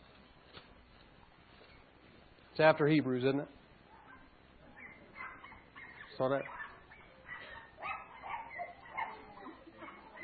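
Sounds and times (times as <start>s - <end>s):
speech: 2.6s - 3.6s, 6.2s - 6.6s
dog barking and yipping: 3.9s - 10.2s.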